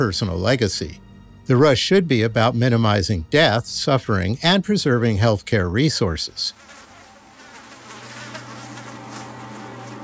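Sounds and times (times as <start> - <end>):
speech: 0.0 - 6.7
mosquito buzzing: 6.5 - 10.0.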